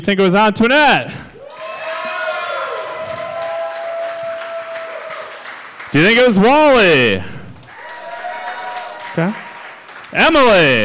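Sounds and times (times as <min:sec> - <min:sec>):
speech: 0:00.0 - 0:01.3, 0:05.9 - 0:07.4, 0:09.2 - 0:09.4, 0:10.1 - 0:10.8
audience whooping: 0:01.4 - 0:05.5, 0:07.7 - 0:09.8
audience applauding: 0:01.4 - 0:06.6, 0:07.4 - 0:10.8.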